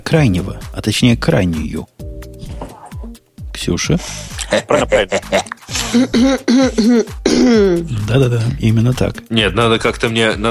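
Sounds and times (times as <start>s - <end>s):
speech: 0.1s - 1.9s, 3.6s - 10.4s
laughter: 4.4s - 6.1s
person clearing throat: 4.4s - 7.9s
person coughing: 4.4s - 7.9s.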